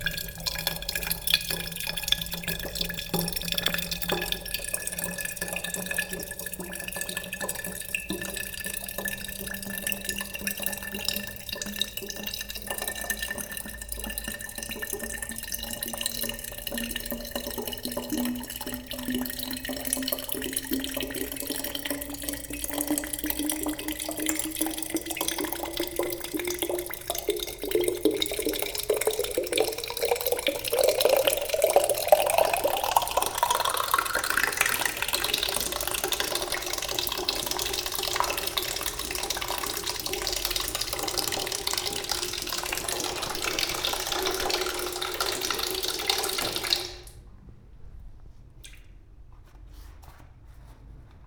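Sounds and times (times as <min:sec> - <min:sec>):
water pouring into a bottle: 0:00.0 - 0:47.2.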